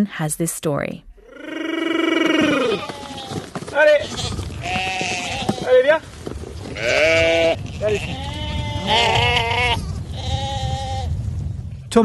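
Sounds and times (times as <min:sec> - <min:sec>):
speech: 0:00.0 - 0:01.1, 0:05.7 - 0:06.2, 0:06.8 - 0:09.8
many sheep bleating in overlapping waves: 0:01.2 - 0:06.0, 0:06.8 - 0:11.2.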